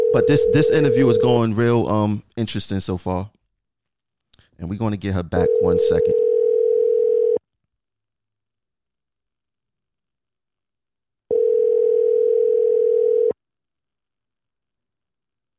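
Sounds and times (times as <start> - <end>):
speech: 0.1 - 3.4, 4.6 - 6.2
telephone dial tone after a call was cut off: 5.5 - 7.4, 11.3 - 13.4.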